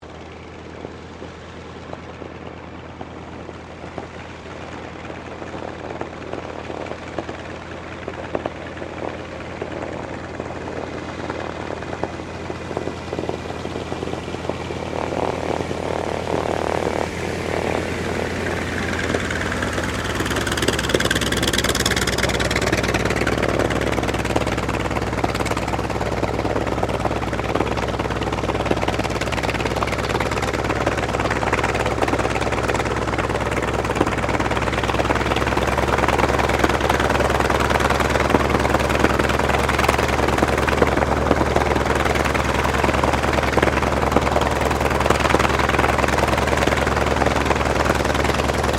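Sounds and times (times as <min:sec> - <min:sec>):
T-28D Trojan aircraft taxiing and shutting down: 0:00.0 - 0:48.7.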